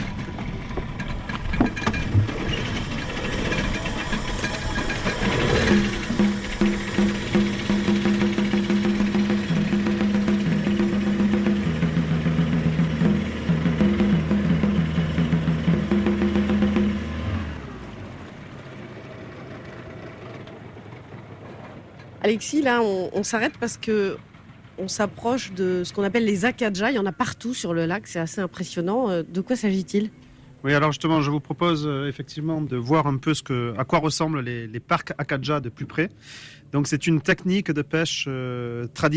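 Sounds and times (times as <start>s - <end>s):
boat motor sputtering to life and droning: 0.0s - 22.0s
speech: 22.3s - 39.1s.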